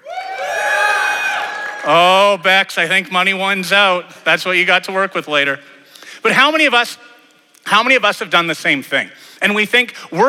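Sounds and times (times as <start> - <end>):
church audience cheering: 0.0 - 2.5
speech: 1.8 - 10.2.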